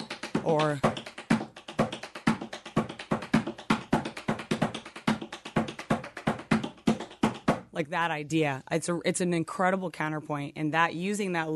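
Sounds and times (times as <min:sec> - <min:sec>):
tap dance steps with heel paddle and roll: 0:00.0 - 0:07.7
speech: 0:00.4 - 0:00.9, 0:07.8 - 0:11.5.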